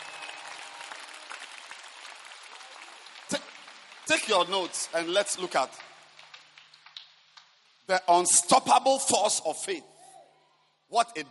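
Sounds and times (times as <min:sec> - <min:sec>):
audience applause of many hands clapping: 0:00.0 - 0:07.0
speech: 0:04.1 - 0:05.9, 0:07.9 - 0:09.9, 0:10.9 - 0:11.3.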